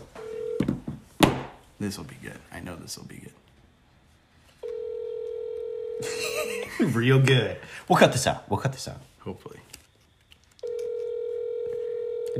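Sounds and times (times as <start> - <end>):
phone ringback tone over a speakerphone: 0.2 - 0.7, 4.6 - 6.2, 10.6 - 12.3
speech: 1.8 - 3.4, 6.8 - 9.6
people laughing: 6.0 - 7.0.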